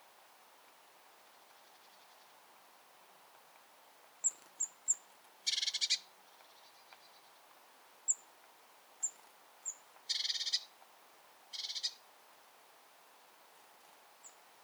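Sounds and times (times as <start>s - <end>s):
Eurasian blue tit Cyanistes caeruleus calling: 4.2s - 6.1s, 9.0s - 10.7s, 11.5s - 12.0s.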